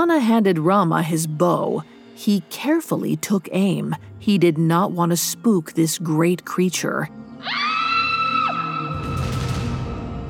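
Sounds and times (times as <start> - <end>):
speech: 0.0 - 7.8
high-pitched scream: 7.4 - 9.4.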